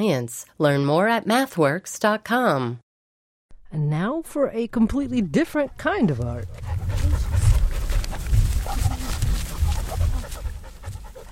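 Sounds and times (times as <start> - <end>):
speech: 0.0 - 2.8, 3.7 - 7.2
dogs panting with growly breaths: 5.5 - 11.3
dogs barking during a group dog walk through a sculpture park: 6.4 - 11.3.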